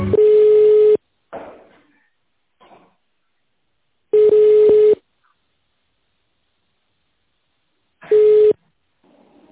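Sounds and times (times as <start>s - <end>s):
telephone beep: 0.2s - 1.0s, 4.2s - 5.0s, 8.1s - 8.6s.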